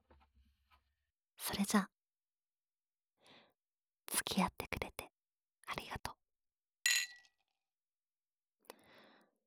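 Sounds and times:
speech: 1.5s - 1.9s, 4.4s - 4.6s
soft tap of a glass: 6.9s - 7.2s
drinking glasses clinking in a toast: 6.9s - 7.3s.

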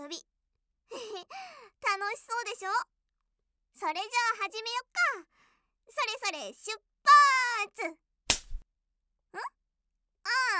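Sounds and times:
speech: 0.1s - 0.3s, 1.3s - 3.0s, 3.8s - 8.0s, 9.3s - 9.6s
hand slap on the buttocks: 8.3s - 8.6s.

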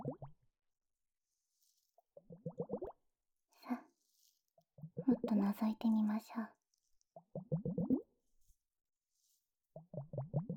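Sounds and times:
water gurgling and plopping: 0.0s - 0.4s, 2.2s - 3.0s, 7.2s - 8.2s, 9.8s - 10.5s
speech: 5.3s - 6.6s.

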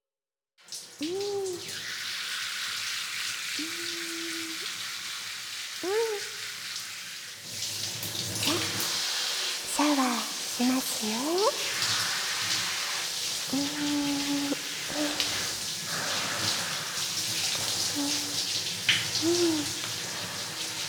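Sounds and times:
shower spray rinsing off shampoo: 0.8s - 20.8s
brief murmured voice sounds: 1.0s - 1.7s, 3.6s - 4.7s, 5.8s - 6.3s, 8.4s - 8.8s, 9.7s - 11.6s, 13.5s - 15.6s, 17.9s - 18.5s, 19.2s - 19.9s
speech: 1.0s - 1.8s
shower water splashing: 1.0s - 4.8s, 7.9s - 20.8s.

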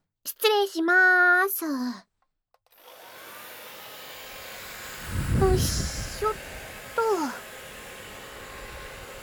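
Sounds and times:
speech: 0.2s - 2.1s, 5.5s - 6.5s
hair dryer blowing to dry hair after a bath: 2.7s - 9.2s.

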